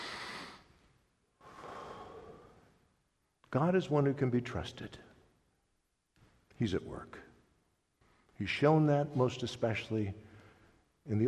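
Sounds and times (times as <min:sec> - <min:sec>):
congregation taking a breath together during a church service: 0:00.0 - 0:00.7, 0:01.4 - 0:02.7
speech: 0:03.5 - 0:05.1, 0:06.6 - 0:07.3, 0:08.4 - 0:10.3, 0:11.1 - 0:11.2.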